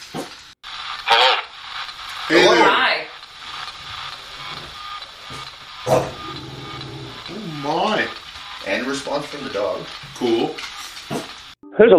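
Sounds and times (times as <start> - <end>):
steady static from a white noise generator spirit box at a house: 0.0 - 11.6
warbling voice-like sounds: 5.2 - 8.2
speech: 5.9 - 6.1, 8.9 - 10.7, 11.8 - 11.9.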